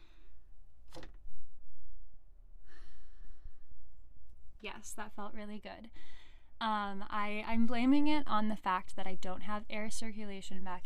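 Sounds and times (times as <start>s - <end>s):
person taking a deep breath in and out: 2.6s - 3.9s, 5.9s - 6.6s
speech: 4.6s - 10.8s.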